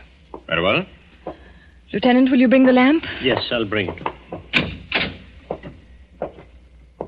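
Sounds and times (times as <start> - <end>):
speech: 0.5 - 4.1
unlocked cellar door unlatched and swung open with clunks and knocks: 3.3 - 7.0.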